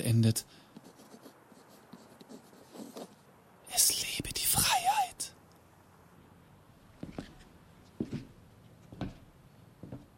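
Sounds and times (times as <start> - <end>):
speech: 0.0 - 0.6, 3.8 - 4.3
pen writing on paper: 0.8 - 3.2.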